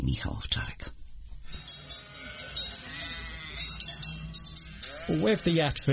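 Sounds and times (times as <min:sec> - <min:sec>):
speech: 0:00.0 - 0:01.0, 0:05.1 - 0:05.9
several sheep bleating: 0:01.5 - 0:05.9.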